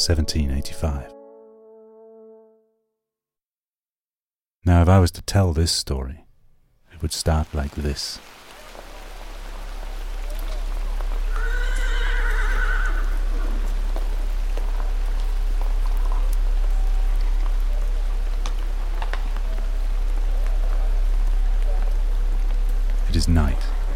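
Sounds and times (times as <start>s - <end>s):
speech: 0.0s - 1.2s, 4.6s - 6.2s, 7.0s - 8.4s
rain falling at night: 6.9s - 23.9s
horse whinnying: 11.3s - 13.6s.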